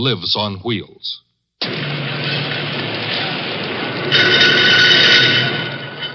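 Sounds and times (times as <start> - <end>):
speech: 0.0 - 1.2, 4.1 - 5.1
car factory assembly line noise: 1.6 - 6.1.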